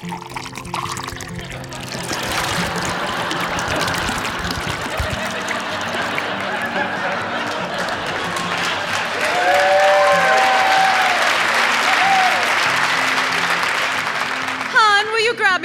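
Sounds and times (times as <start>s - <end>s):
wine pouring into a glass: 0.0s - 14.6s
laughter: 1.7s - 14.4s.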